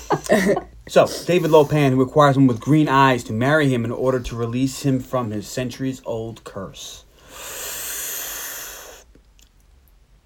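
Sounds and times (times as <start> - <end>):
speech: 0.3 - 7.6
person sharply sucking in breath: 7.2 - 9.1.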